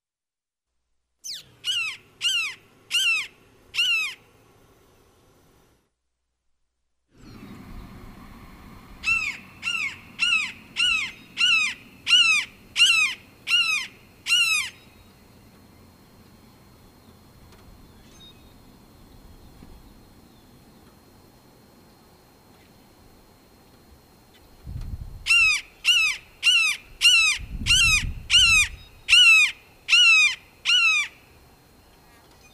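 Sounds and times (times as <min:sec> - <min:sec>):
red-shouldered hawk calling: 0:01.2 - 0:04.2, 0:09.0 - 0:15.0, 0:25.3 - 0:31.2.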